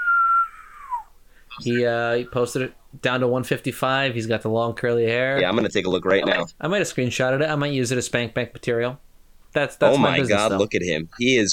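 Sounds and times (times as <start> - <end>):
person trying to whistle: 0.0 - 1.2
speech: 1.6 - 11.5.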